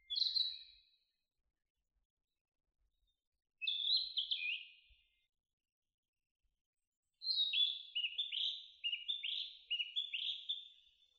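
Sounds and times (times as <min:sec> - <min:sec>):
narcissus flycatcher singing: 0:00.0 - 0:01.0, 0:03.6 - 0:05.2, 0:07.2 - 0:11.1.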